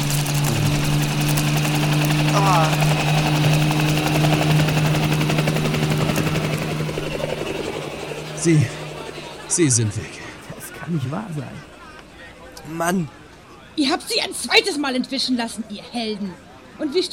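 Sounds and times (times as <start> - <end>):
helicopter taking off and flying away with deep rotor hum: 0.0 - 17.1
person exclaiming: 2.3 - 2.8
speech: 8.4 - 8.8, 9.6 - 10.2, 10.9 - 11.7, 12.7 - 13.2, 13.8 - 17.1.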